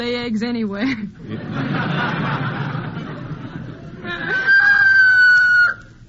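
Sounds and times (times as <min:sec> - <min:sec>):
speech: 0:00.0 - 0:02.8
laughter: 0:00.8 - 0:05.0
rooster crowing: 0:04.3 - 0:05.8.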